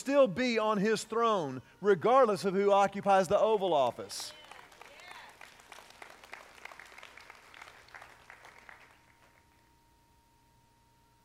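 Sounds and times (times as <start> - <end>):
speech: 0.0 - 4.4
scattered smattering of audience applause: 4.3 - 9.6.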